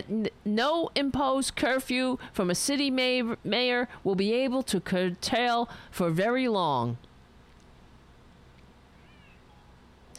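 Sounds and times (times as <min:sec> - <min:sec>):
speech: 0:00.0 - 0:07.1
cat meowing faintly: 0:09.0 - 0:09.7.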